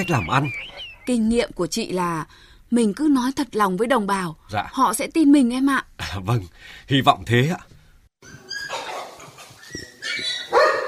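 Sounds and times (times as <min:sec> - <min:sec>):
speech: 0:00.0 - 0:08.4
dog barking: 0:08.6 - 0:09.2, 0:10.0 - 0:10.8.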